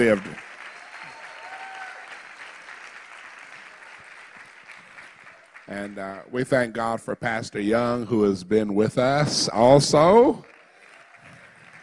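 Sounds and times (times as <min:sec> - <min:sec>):
speech: 0:00.0 - 0:00.4, 0:05.7 - 0:10.6
congregation applauding at a church service: 0:00.0 - 0:06.4, 0:09.4 - 0:11.8.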